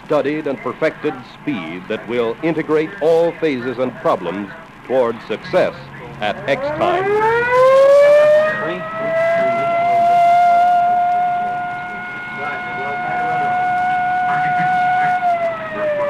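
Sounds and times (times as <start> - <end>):
faint murmur: 0.0 - 16.0
speech: 0.1 - 7.7
standby siren wailing before a test countdown: 5.5 - 16.0.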